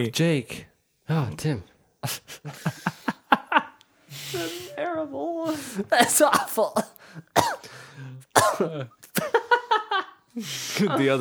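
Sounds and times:
speech: 0.0 - 3.0, 4.1 - 9.5, 10.4 - 11.1
laughter: 2.0 - 4.8, 8.6 - 11.1
short voiced gasping bursts: 4.0 - 4.8, 5.5 - 5.9, 6.9 - 8.3
harsh coughs: 5.9 - 7.7, 8.3 - 9.3.

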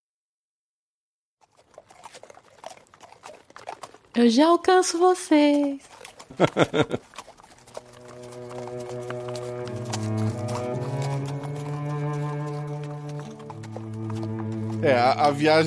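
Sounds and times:
horse hooves clip-clopping as horses travel: 1.4 - 15.6
speech: 4.2 - 7.1, 14.8 - 15.6
laughter: 6.3 - 7.1
low sustained musical drone: 7.8 - 15.6.

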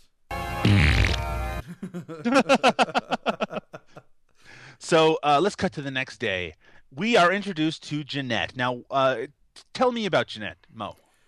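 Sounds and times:
loud buzzing fart noise blown with the mouth: 0.6 - 1.4
rhythmic pulsing laughter: 1.6 - 4.0
speech: 1.8 - 2.9, 4.8 - 11.0.

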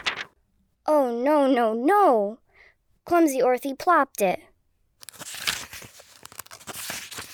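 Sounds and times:
sheet of paper rustling and crinkling as it is folded: 0.0 - 0.4, 5.0 - 7.3
speech: 1.1 - 2.4, 3.1 - 4.5.

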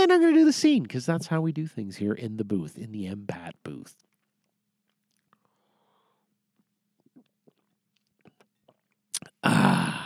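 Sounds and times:
speech: 0.0 - 4.1
faint mouth clicks: 7.0 - 10.0.

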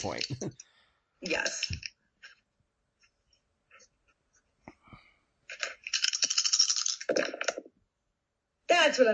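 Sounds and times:
speech: 0.0 - 1.9, 7.1 - 7.4, 8.7 - 9.1
dice tumbling on a surface in a tabletop role-playing game: 5.5 - 7.7.

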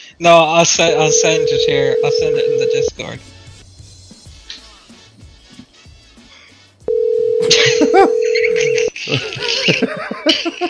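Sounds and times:
speech: 0.2 - 3.3, 9.1 - 10.6
telephone tone: 0.9 - 2.9, 6.9 - 8.9
laughter: 7.4 - 10.6.

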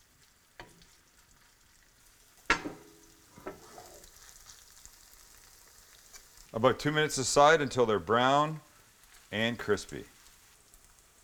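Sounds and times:
faint steady sizzle of frying in a nonstick pan: 0.0 - 11.2
zucchini fritter batter spattering in hot canola oil in a nonstick pan: 2.4 - 4.8
speech: 6.6 - 8.7, 9.3 - 10.1.

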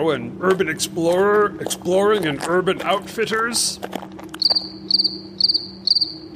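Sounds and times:
speech: 0.0 - 5.5
quiet low hum: 0.0 - 6.3
cricket chirping: 4.4 - 6.3.

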